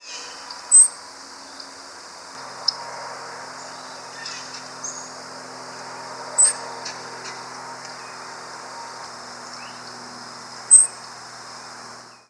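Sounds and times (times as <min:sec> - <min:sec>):
grasshopper sparrow calling: 0:00.0 - 0:01.7, 0:02.6 - 0:02.8, 0:03.6 - 0:05.3, 0:06.3 - 0:08.3, 0:10.6 - 0:12.2
faint hum: 0:00.0 - 0:12.2.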